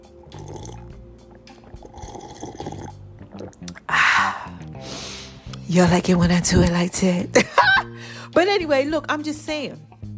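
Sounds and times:
coconut water pouring into a glass: 0.2 - 4.0
speech: 5.7 - 7.5, 8.4 - 9.9.

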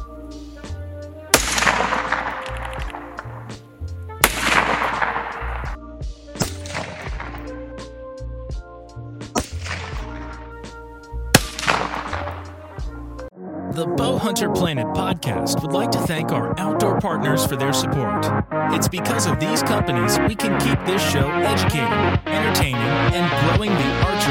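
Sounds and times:
hunting rifle fired down range: 1.3 - 3.6, 4.2 - 5.8, 6.4 - 7.6, 9.4 - 10.6, 11.3 - 12.8
speech: 14.2 - 24.2.

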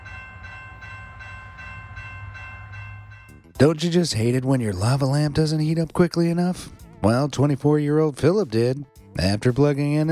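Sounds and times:
fast express train rumbling on railway tracks: 0.0 - 5.2
speech: 3.6 - 10.1.

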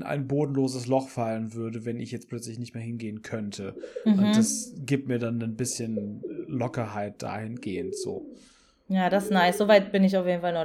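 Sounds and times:
speech: 0.0 - 10.6
pigeons cooing: 3.7 - 4.8, 5.8 - 6.7, 7.6 - 8.5.

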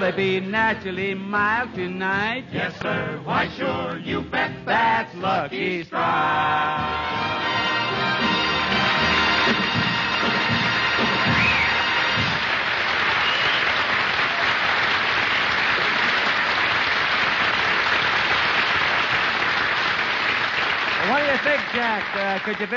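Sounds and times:
speech: 0.0 - 7.5, 21.1 - 22.7
music: 0.0 - 12.6
studio audience applause: 7.4 - 22.7.

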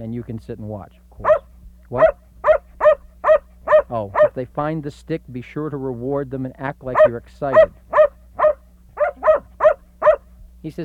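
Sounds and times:
speech: 0.0 - 2.2, 3.9 - 7.8, 10.6 - 10.8
faint low hum: 0.0 - 10.8
dog barking: 1.2 - 4.4, 6.9 - 10.3.

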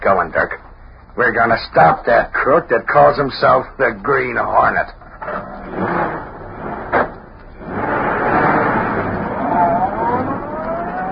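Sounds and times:
speech: 1.2 - 5.0
car engine accelerating as the car pulls away into the street: 5.2 - 11.1.

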